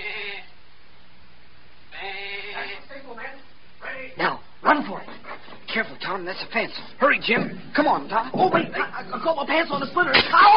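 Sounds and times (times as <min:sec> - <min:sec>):
person imitating a sheep bleat as a signal: 0:00.0 - 0:00.5, 0:01.9 - 0:02.9
speech: 0:04.2 - 0:10.5.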